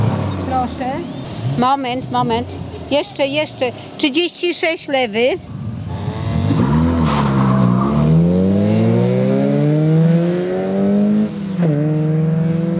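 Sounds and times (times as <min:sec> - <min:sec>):
speech: 0:00.6 - 0:05.5
car engine revving hard: 0:05.8 - 0:12.7
car tires squealing: 0:05.9 - 0:08.4.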